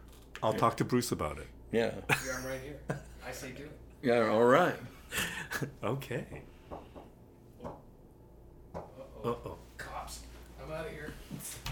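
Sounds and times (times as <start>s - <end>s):
speech: 0.4s - 6.8s, 8.7s - 9.6s
soft knocking on a door: 6.3s - 7.9s.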